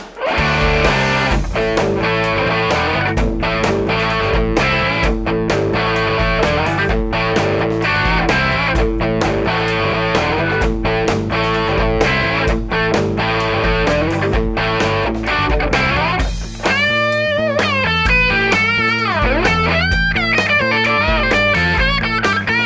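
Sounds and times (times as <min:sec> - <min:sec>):
high-gain electric guitar on bridge humbucker pickup: 0:00.2 - 0:22.6.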